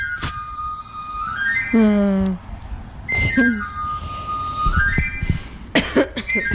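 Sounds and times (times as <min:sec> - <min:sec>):
knife grinder's panpipe whistle: 0:00.0 - 0:02.0, 0:03.1 - 0:05.6, 0:06.2 - 0:06.5
speech: 0:01.7 - 0:02.5, 0:03.4 - 0:03.7, 0:06.4 - 0:06.5
person coughing or making throat noises: 0:05.7 - 0:06.4.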